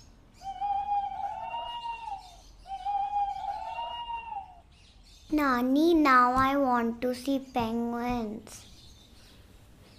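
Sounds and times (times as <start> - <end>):
big owl hooting: 0.3 - 4.7
speech: 5.3 - 8.7.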